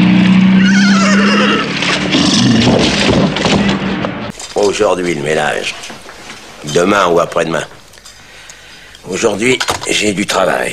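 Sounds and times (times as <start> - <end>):
horse whinnying: 0.5 - 2.9
rustling and movement: 1.5 - 8.3
speech: 4.8 - 5.9, 6.6 - 7.8, 9.0 - 10.7.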